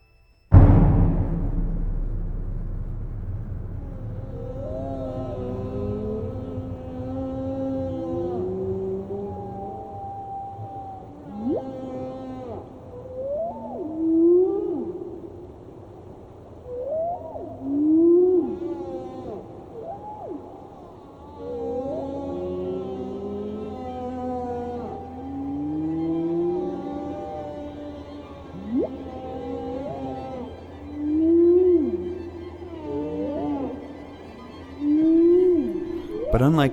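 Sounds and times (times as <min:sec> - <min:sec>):
low steady drone: 0:00.5 - 0:09.4, 0:35.1 - 0:36.7
whale song of moans and whooping cries: 0:04.5 - 0:15.4, 0:16.6 - 0:36.7
speech: 0:36.4 - 0:36.7.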